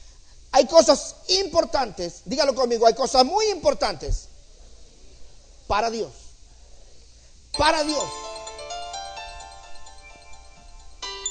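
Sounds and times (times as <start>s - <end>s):
speech: 0.6s - 4.3s, 5.7s - 6.2s, 7.6s - 8.2s
mobile phone ringing with bright melodic electronic ringtone: 7.6s - 11.2s.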